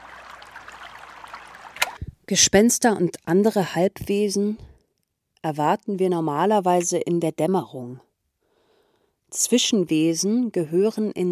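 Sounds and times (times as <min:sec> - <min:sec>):
river flowing calmly: 0:00.0 - 0:02.1
water splash: 0:00.0 - 0:02.1
speech: 0:02.3 - 0:04.7, 0:05.4 - 0:08.1, 0:09.3 - 0:11.2.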